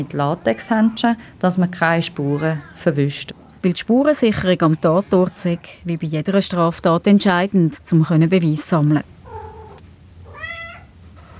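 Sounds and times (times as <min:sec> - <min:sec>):
speech: 0:00.0 - 0:09.2
low steady hum: 0:00.0 - 0:11.3
tomcat meowing: 0:09.3 - 0:11.0.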